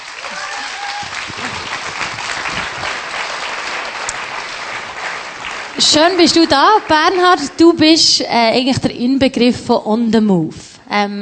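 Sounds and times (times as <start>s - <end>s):
audience applause welcoming a speaker onto the stage: 0.0s - 7.7s
speech: 5.8s - 11.2s.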